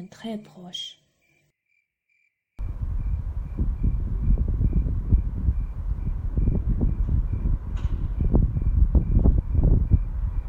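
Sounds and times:
speech: 0.0s - 1.0s
faint evenly pulsing cricket-like chirp: 0.8s - 10.4s
soft low wind gusting at night: 2.6s - 10.4s.

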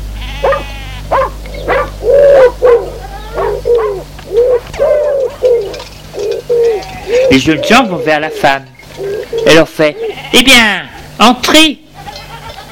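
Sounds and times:
constant low hum: 0.0s - 10.2s
dog barking in quick short yelps: 0.4s - 5.1s
speech: 7.3s - 8.7s, 9.4s - 11.8s.

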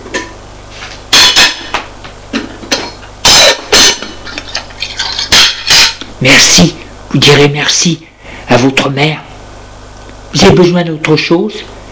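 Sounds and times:
saucepan, plates and spoon clinking together: 2.4s - 6.1s
speech: 6.2s - 9.2s, 10.3s - 11.8s.

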